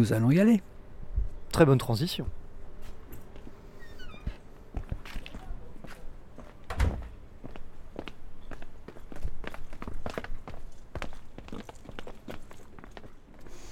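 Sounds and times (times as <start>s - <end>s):
speech: 0.0s - 0.7s, 1.5s - 2.4s
footsteps on a hard surface in an old quarry tunnel at Les Moulineaux: 4.2s - 13.5s.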